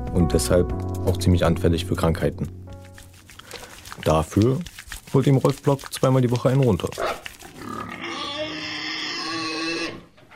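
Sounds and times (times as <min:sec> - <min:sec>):
speech: 0:00.2 - 0:02.7, 0:04.0 - 0:07.2
boar grunting and squealing: 0:06.9 - 0:10.1.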